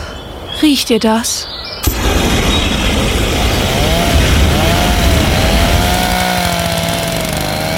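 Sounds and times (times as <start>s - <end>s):
speech: 0.6s - 1.5s
pressure washer running with wavering whine: 1.9s - 7.7s
lawn mower running: 3.0s - 7.7s.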